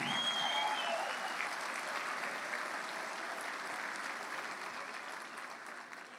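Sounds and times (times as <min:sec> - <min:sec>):
audience applause at a product sales meeting: 0:00.0 - 0:06.1.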